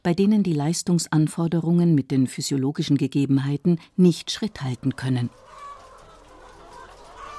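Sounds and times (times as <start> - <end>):
speech: 0.1 - 5.4
flock of laying hens clucking and cackling: 4.2 - 7.3.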